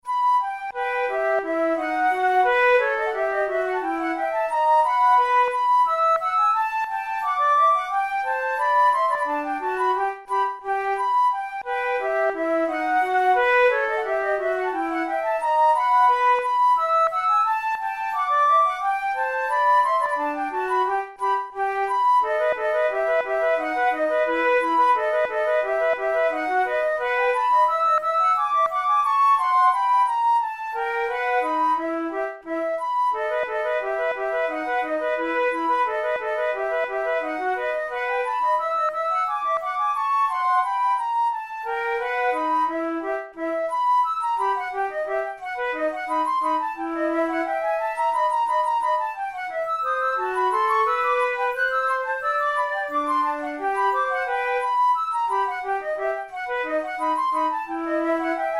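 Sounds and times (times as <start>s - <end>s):
solo flute fantasia: 0.0s - 58.5s.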